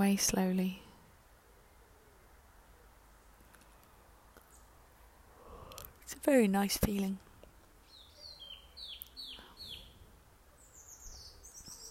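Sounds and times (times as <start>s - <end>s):
speech: 0.0s - 0.8s, 6.2s - 7.3s
soft wind: 0.0s - 11.8s
birds chirping and whistling outdoors: 7.8s - 10.0s, 10.6s - 11.8s.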